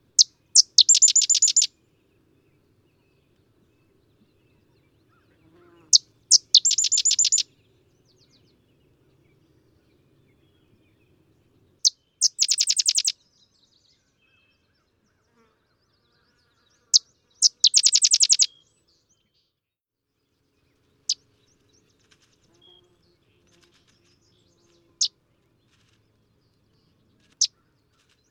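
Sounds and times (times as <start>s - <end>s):
Sedge Wren: 0.1s - 1.7s, 5.9s - 7.5s, 12.2s - 13.1s, 17.4s - 18.5s.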